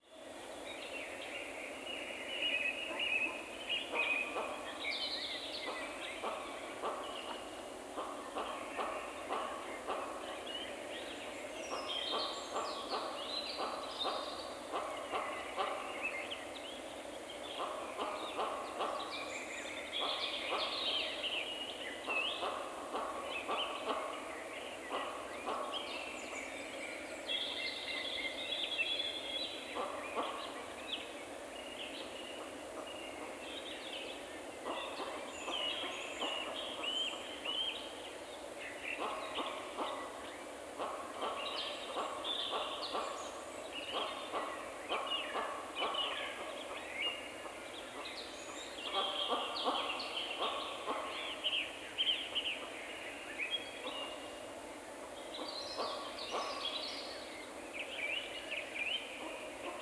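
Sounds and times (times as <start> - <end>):
forest sounds: 0.0 - 59.8.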